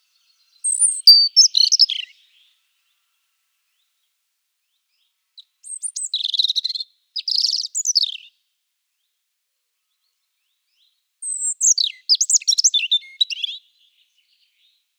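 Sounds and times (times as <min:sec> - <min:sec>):
European robin singing: 0:00.0 - 0:02.6, 0:04.7 - 0:08.3, 0:10.7 - 0:14.8.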